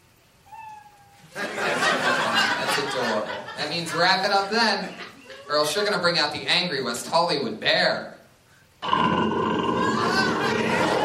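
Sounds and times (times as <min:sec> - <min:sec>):
kitten meowing: 0:00.4 - 0:01.2
laughter: 0:01.4 - 0:05.5, 0:09.8 - 0:11.0
speech: 0:03.2 - 0:08.2
loud wash of broadband noise: 0:08.8 - 0:11.0.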